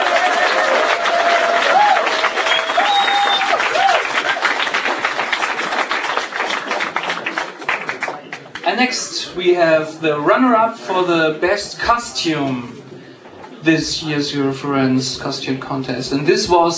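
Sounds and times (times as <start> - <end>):
audience applause for a best performance award winner: 0.0 - 8.6
audience whistles: 2.3 - 3.6
speech: 8.8 - 12.8, 13.6 - 16.7.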